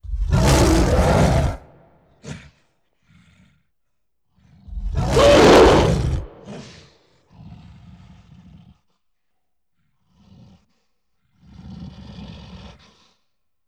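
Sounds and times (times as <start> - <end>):
gorilla giving loud harsh roars: 0.1 - 1.8, 4.7 - 6.8.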